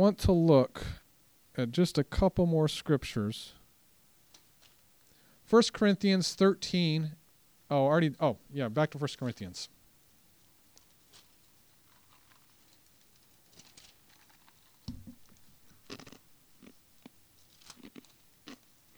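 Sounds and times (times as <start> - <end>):
speech: 0.0 - 1.0, 1.6 - 3.6, 5.5 - 9.8
crunching and crackling bursts with crisp snaps: 3.5 - 5.6, 9.2 - 18.9.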